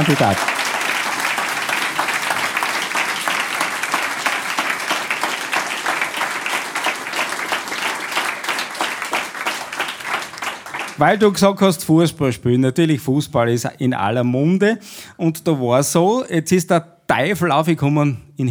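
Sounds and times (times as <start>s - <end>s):
speech: 0.0s - 0.6s, 11.0s - 18.4s
audience applause: 0.0s - 11.4s.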